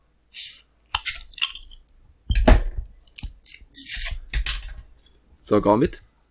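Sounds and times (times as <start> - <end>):
sealed beer package crinkling and tearing: 0.4 - 1.8, 2.9 - 4.4
speech: 5.5 - 6.1.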